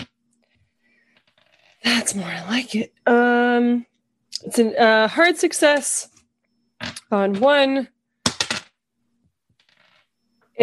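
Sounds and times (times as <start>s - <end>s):
speech: 1.8s - 6.1s, 6.8s - 8.0s
dice rolled during a tabletop roleplaying game: 8.2s - 8.8s, 9.6s - 10.0s.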